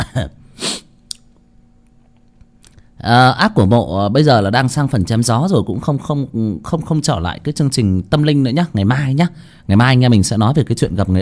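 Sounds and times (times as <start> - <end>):
person coughing in a cold air-conditioned room: 0.0 - 0.9
speech: 0.2 - 0.4, 3.0 - 11.2.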